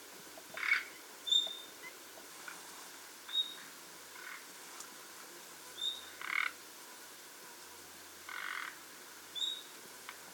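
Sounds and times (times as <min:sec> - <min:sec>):
faint background hiss: 0:00.0 - 0:10.3
common nightingale calling with thin whistles and harsh croaking notes: 0:00.5 - 0:02.0, 0:03.3 - 0:04.4, 0:05.7 - 0:06.5, 0:08.3 - 0:09.7.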